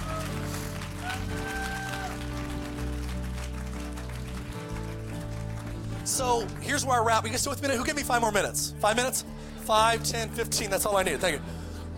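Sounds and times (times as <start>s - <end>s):
crowd clapping in a tent at a church gathering: 0.0s - 7.7s
speech: 6.1s - 11.6s.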